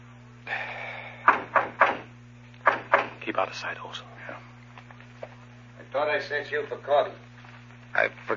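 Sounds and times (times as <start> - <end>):
low electrical hum: 0.0 - 8.3
firm knocks on a door: 1.3 - 2.1, 2.7 - 3.2
speech: 3.3 - 4.5, 5.9 - 7.3, 7.9 - 8.3.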